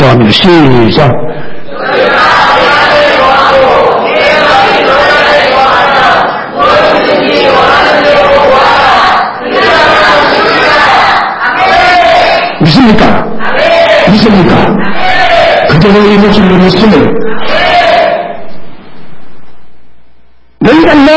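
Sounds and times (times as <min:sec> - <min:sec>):
speech: 0:00.2 - 0:02.3, 0:12.8 - 0:13.2, 0:14.1 - 0:15.0, 0:15.8 - 0:17.6, 0:20.9 - 0:21.1
large crowd shouting a scripture passage in unison: 0:01.7 - 0:12.6, 0:13.4 - 0:14.2, 0:14.8 - 0:15.7, 0:17.2 - 0:18.4.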